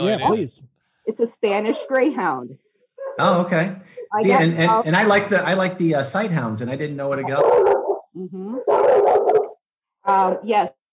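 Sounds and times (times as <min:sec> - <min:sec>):
speech: 0:00.0 - 0:09.0, 0:10.0 - 0:10.8
dog giving a rising howl-like yelp: 0:03.0 - 0:03.3, 0:07.2 - 0:09.6
dogs barking and snarling at each other: 0:07.3 - 0:09.6.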